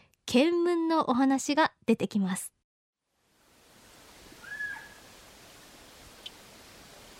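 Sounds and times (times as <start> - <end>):
speech: 0.3 - 2.6
steady hissing forest ambience on Amami in cloudy weather: 3.1 - 7.1
Amami Ishikawa's frog calling in a forest on Amami in cloudy weather: 4.4 - 5.2
small isolated tick: 6.2 - 6.4.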